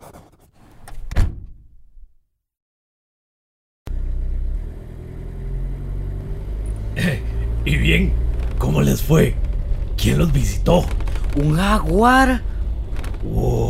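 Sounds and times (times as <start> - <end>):
car door rattling and slamming shut: 1.1 - 1.6
car engine rumbling as the vehicle drives off: 3.9 - 13.6
speech: 7.6 - 12.5, 13.2 - 13.6.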